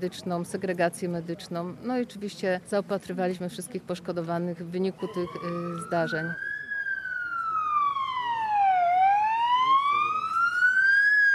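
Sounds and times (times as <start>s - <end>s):
speech: 0.0s - 6.5s
ambulance siren wailing during a mountain rescue training exercise in Bieszczady Poland: 4.9s - 11.3s.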